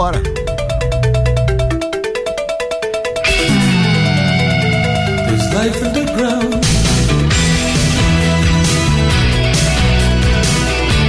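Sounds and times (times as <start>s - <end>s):
speech: 0.1s - 0.4s
loud pulsing synth pattern: 0.3s - 8.2s
new wave rock band playing soundtrack intro: 3.2s - 11.0s.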